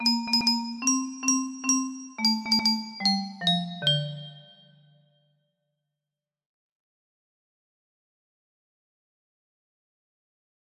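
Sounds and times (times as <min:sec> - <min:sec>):
music box melody: 0:00.0 - 0:04.9.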